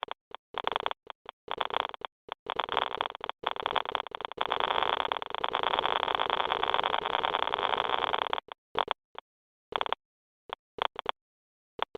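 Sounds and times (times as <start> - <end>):
geiger counter static: 0.0 - 9.2.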